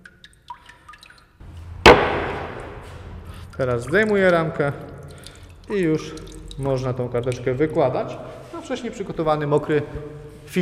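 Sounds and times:
scattered water drips: 0.0s - 10.6s
speech: 3.6s - 4.9s, 5.7s - 10.6s.

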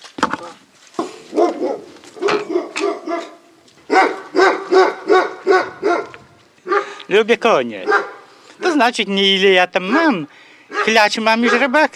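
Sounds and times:
dog barking: 1.3s - 7.0s, 7.8s - 8.8s, 9.9s - 11.8s
speech: 7.1s - 7.9s, 8.7s - 11.9s.

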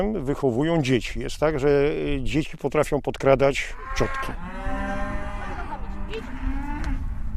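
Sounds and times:
speech: 0.0s - 4.6s
cows mooing: 3.7s - 7.0s.

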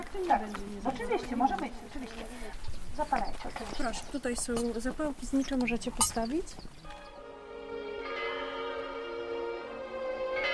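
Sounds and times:
speech: 0.1s - 7.0s
memorial bells tolling: 6.9s - 10.5s.

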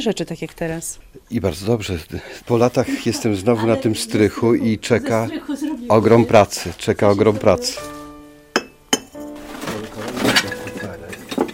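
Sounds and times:
speech: 0.0s - 8.0s
laughter: 2.5s - 5.5s
glass kerosene lamp chimney clinking in an attic: 8.5s - 11.5s
glass kerosene lamp chimney rattling and knocking as it is handled: 8.6s - 11.5s.

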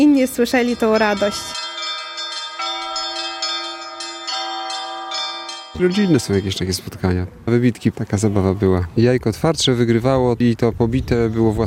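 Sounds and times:
speech: 0.0s - 1.6s, 5.8s - 11.6s
several church bells ringing in a peal: 0.0s - 7.1s.

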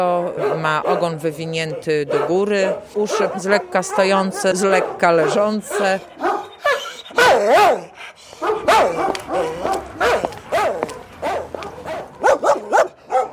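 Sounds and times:
speech: 0.0s - 6.4s, 7.4s - 10.8s
large dog barking and whining: 0.1s - 13.3s.

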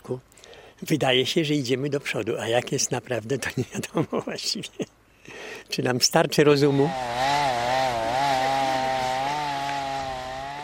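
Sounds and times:
speech: 0.1s - 5.0s, 5.7s - 7.4s
chainsaw cutting through wood: 6.7s - 10.6s.

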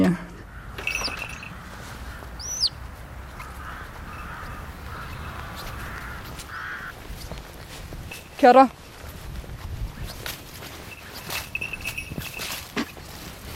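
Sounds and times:
steady outdoor noise: 0.0s - 13.5s
bird giving sharp harsh calls after landing in ivy bushes: 0.4s - 7.4s
speech: 8.4s - 8.8s.

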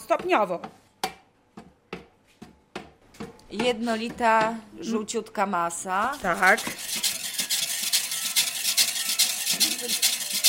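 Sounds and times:
speech: 0.1s - 0.8s, 3.5s - 6.9s
whisk strokes against a bowl whisking egg whites until stiff: 5.9s - 10.4s.

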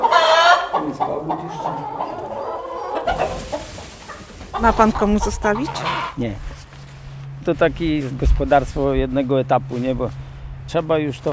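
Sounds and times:
hens clucking: 0.0s - 6.7s
speech: 4.6s - 6.5s, 7.4s - 11.3s.

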